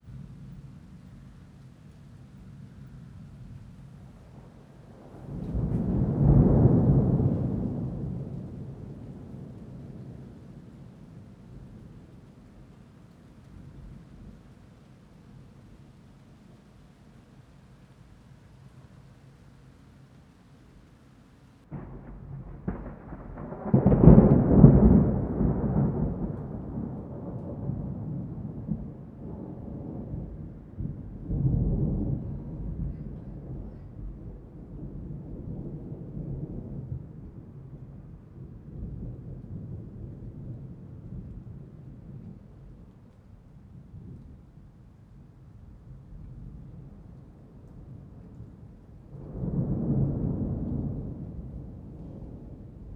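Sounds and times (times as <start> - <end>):
intense thunder: 3.1 - 12.2, 21.6 - 42.8, 46.0 - 52.9.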